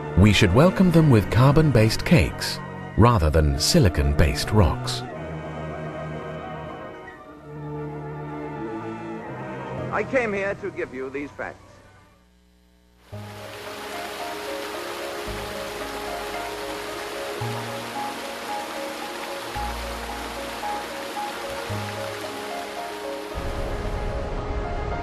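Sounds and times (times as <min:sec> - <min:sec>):
speech: 0:00.2 - 0:05.1, 0:10.0 - 0:11.6
flowing water: 0:13.1 - 0:23.8.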